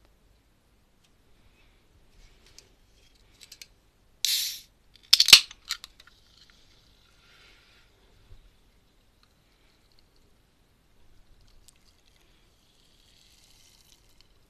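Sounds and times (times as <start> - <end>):
orange fizzy drink can opening with hiss and crack: 4.3 - 5.5
orange fizzy drink fizzing as it is poured: 11.4 - 14.4.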